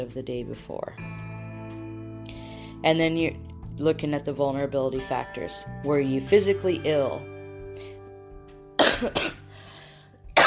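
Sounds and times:
speech: 0.0 - 1.8, 2.8 - 7.9, 9.0 - 9.4
person coughing: 8.8 - 9.5.

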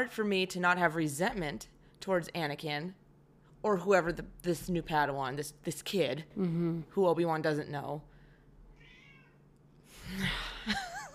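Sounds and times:
speech: 0.0 - 3.0, 3.6 - 8.1
cat meowing: 8.7 - 9.4.

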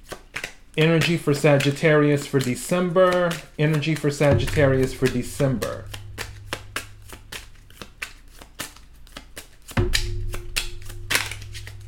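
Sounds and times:
deck of oracle cards being shuffled: 0.0 - 5.4, 7.6 - 9.8
speech: 0.8 - 6.0
low steady hum: 4.3 - 8.4, 9.8 - 11.8.

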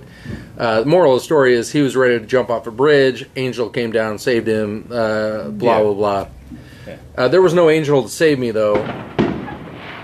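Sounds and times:
speech: 0.6 - 9.2
small New Year fireworks crackling and booming: 7.9 - 10.0.

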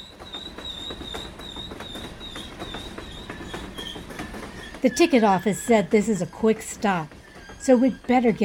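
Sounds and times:
train arriving at station with rumble and wheels over rail joints: 0.0 - 8.4
speech: 4.8 - 8.4.

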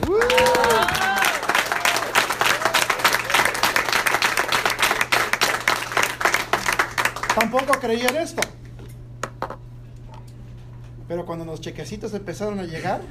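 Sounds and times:
crowd cheering and whooping: 0.0 - 3.8
crowd applauding: 0.0 - 8.4
speech: 7.4 - 8.6, 11.1 - 13.1.

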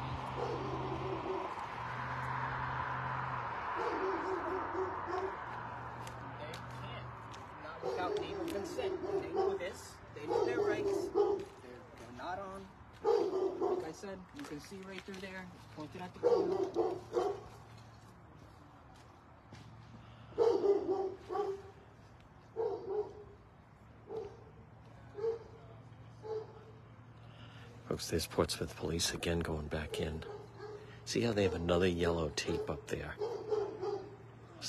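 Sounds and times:
dogs barking: 0.1 - 2.3, 3.3 - 6.1, 7.7 - 11.7, 12.9 - 14.1, 16.1 - 17.7, 20.3 - 21.9, 22.4 - 26.8, 29.6 - 34.6
speech: 8.7 - 11.0, 13.9 - 17.2, 28.0 - 30.3, 31.1 - 33.3.

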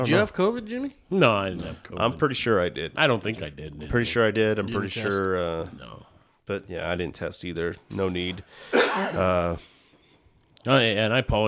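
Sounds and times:
speech: 0.0 - 9.7, 10.6 - 11.4
short voiced throat-clearing cough: 8.6 - 9.5.

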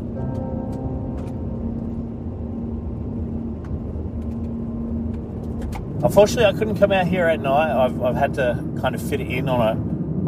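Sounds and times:
car driving along a road with low engine and road rumble: 0.0 - 10.2
speech: 6.0 - 10.2.

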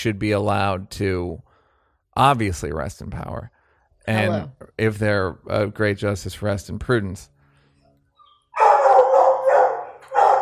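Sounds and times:
speech: 0.0 - 1.5, 2.2 - 7.3
dog whimpering: 8.1 - 8.6
dog howling: 8.2 - 10.3.

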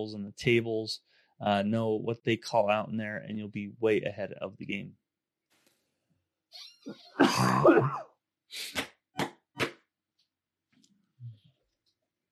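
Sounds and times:
speech: 0.0 - 5.0, 6.5 - 8.9
faint low throat sound: 7.1 - 8.0
person in a loud coughing fit: 7.1 - 8.0.

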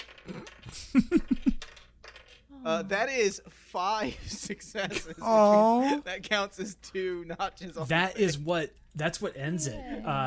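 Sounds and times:
seven dice clattering on a hard surface during a tabletop role-playing game: 0.0 - 2.5
speech: 0.2 - 1.3, 2.6 - 10.2.

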